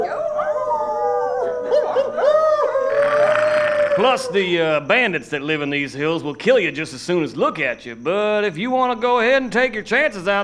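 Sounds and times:
coyotes or wolves howling in a chorus: 0:00.0 - 0:04.8
speech: 0:04.0 - 0:10.4.

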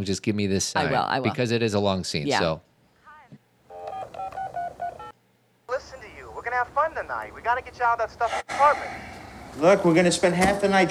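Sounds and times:
speech: 0:00.0 - 0:02.7, 0:06.9 - 0:10.9
electronic telephone keypad beeps: 0:03.7 - 0:05.1.

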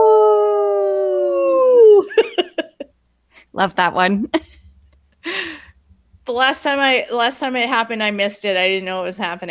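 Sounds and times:
person imitating a wolf howl: 0:00.0 - 0:02.1
speech: 0:03.6 - 0:04.6, 0:06.3 - 0:09.4.

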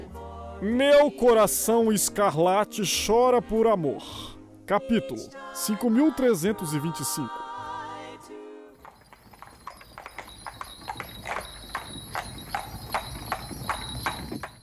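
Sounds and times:
speech: 0:00.6 - 0:07.5
horse hooves trotting: 0:08.8 - 0:14.6.

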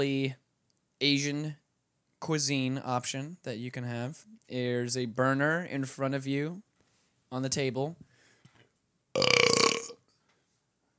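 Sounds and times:
speech: 0:00.0 - 0:00.4, 0:01.0 - 0:01.6, 0:02.2 - 0:06.7, 0:07.3 - 0:08.1, 0:09.2 - 0:09.5
loud drawn-out burp: 0:09.2 - 0:10.0.

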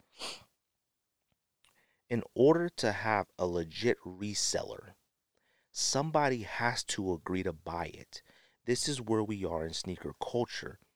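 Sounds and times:
loud sniff drawing air through the nose: 0:00.1 - 0:00.5
speech: 0:02.1 - 0:05.0, 0:05.8 - 0:10.8.

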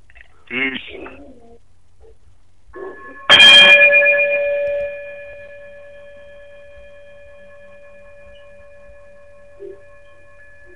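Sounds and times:
bright closing chime ringing: 0:02.8 - 0:10.7.

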